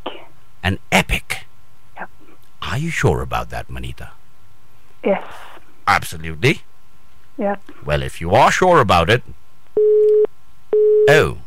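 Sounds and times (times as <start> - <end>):
speech: 0.7 - 1.2, 2.8 - 4.2, 5.0 - 6.7, 7.4 - 11.4
telephone busy signal after a caller's line dropped: 9.8 - 11.2.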